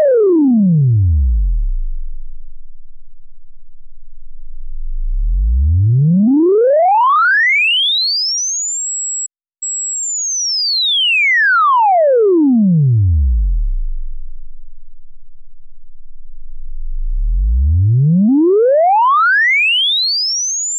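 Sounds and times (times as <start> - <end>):
synthesizer LFO modulation: 0.1 - 7.8, 11.8 - 19.9.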